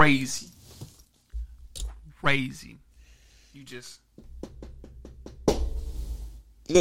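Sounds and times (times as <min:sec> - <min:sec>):
speech: 0:00.0 - 0:00.5, 0:02.2 - 0:02.8, 0:03.6 - 0:04.3
knocking on a door: 0:04.2 - 0:05.8.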